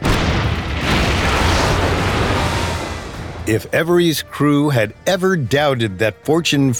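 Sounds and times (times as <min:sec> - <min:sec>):
cannon blasts and explosions in a dense barrage: 0:00.0 - 0:03.6
speech: 0:03.5 - 0:06.7.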